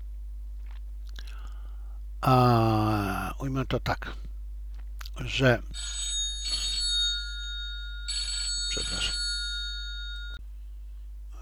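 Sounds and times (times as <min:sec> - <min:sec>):
faint steady tone: 0:00.0 - 0:11.4
speech: 0:02.2 - 0:04.2, 0:05.2 - 0:06.0
telephone ringing with electronic trilling: 0:05.2 - 0:10.4.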